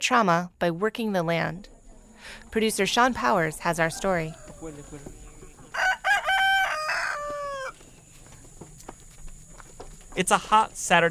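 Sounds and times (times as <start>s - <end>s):
speech: 0.0s - 5.2s, 10.2s - 11.1s
hens clucking on a farm: 1.4s - 10.8s
rooster crowing at a refugee community garden in Comer Georgia: 3.7s - 7.9s.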